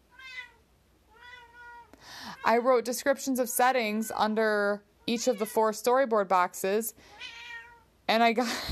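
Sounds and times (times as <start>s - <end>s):
cat meowing: 0.1s - 2.8s, 5.0s - 5.6s, 7.1s - 7.9s
speech: 2.5s - 7.4s, 8.1s - 8.7s.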